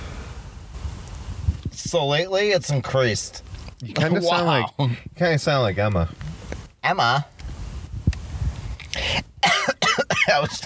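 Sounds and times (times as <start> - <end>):
speech: 1.8 - 7.3
breathing and throat noise: 8.3 - 9.4
person coughing after inhaling spit: 9.4 - 10.6.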